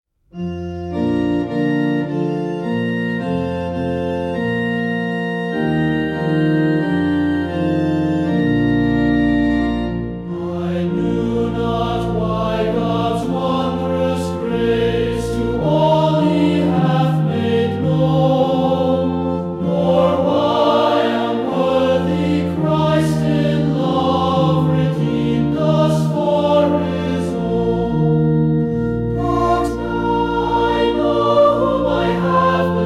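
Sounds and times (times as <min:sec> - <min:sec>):
organ: 0:00.3 - 0:32.8
choir singing a hymn: 0:06.7 - 0:32.8.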